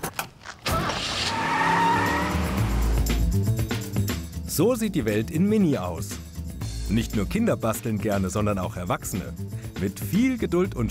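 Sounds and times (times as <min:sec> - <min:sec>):
red car tyres squealing and skidding: 0:00.6 - 0:03.1
red car engine roaring loudly: 0:00.7 - 0:03.9
speech: 0:04.6 - 0:06.2, 0:06.9 - 0:10.8.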